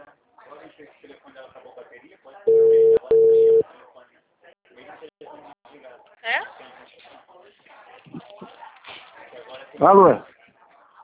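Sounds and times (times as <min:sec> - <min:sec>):
speech: 0:00.8 - 0:02.9, 0:09.8 - 0:10.3
telephone calling tone beeps: 0:02.5 - 0:03.6.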